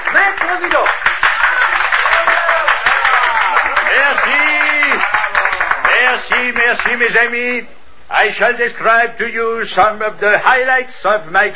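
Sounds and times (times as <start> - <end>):
audience applause: 0.0 - 7.0
speech: 0.2 - 1.1, 6.0 - 11.5.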